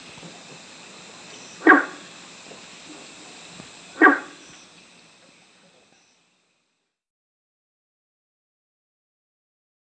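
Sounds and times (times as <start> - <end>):
Guenther's frog Rana guentheri giving gruff barking notes: 0.0 - 6.2
quiet hiss: 0.0 - 7.0.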